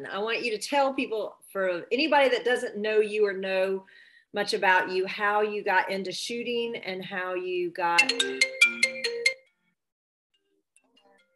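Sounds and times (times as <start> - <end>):
speech: 0.0 - 8.6
phone ringtone from an incoming spam call through a laptop: 8.0 - 9.6.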